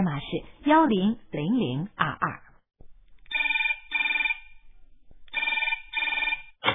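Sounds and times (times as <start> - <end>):
speech: 0.0 - 2.3
telephone bell ringing: 3.3 - 4.6, 5.3 - 6.6.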